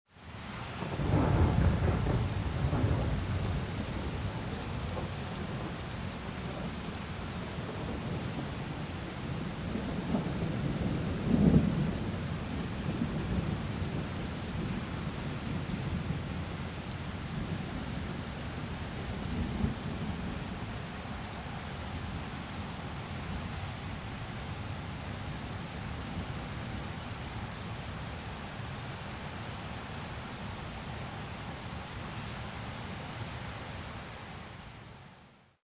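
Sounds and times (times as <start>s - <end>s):
heavy rain: 0.1s - 35.6s
thunder: 0.8s - 4.1s, 4.9s - 5.7s, 9.7s - 12.3s.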